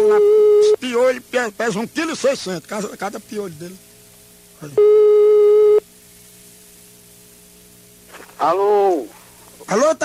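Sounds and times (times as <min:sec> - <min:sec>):
telephone busy signal while redialing a dropped call: 0:00.0 - 0:00.8, 0:04.8 - 0:05.8
speech: 0:00.0 - 0:03.9, 0:04.6 - 0:05.1, 0:08.4 - 0:10.0.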